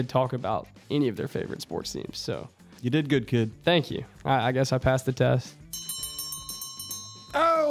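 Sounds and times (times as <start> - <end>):
speech: 0.0 - 6.0
closing bell clanging: 5.7 - 7.4.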